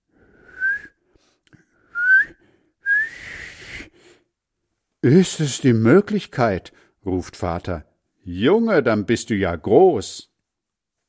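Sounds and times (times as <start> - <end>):
whistled notes rising in pitch: 0.4 - 1.0, 1.9 - 3.9
speech: 5.0 - 10.3.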